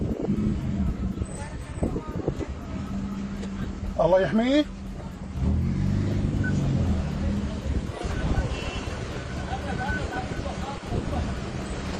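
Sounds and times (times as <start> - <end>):
wind buffeting the microphone: 0.0 - 3.9, 6.9 - 11.9
indistinct voices: 0.0 - 11.9
low car engine rumble: 0.0 - 11.9
passing vehicles: 0.0 - 11.9
road noise from a car moving through traffic: 0.0 - 11.9
speech: 4.0 - 4.8.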